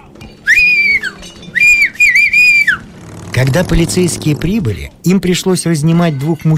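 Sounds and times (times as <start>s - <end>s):
shrill piercing whistle blown to summon police: 0.4s - 2.9s
speech: 3.4s - 6.5s.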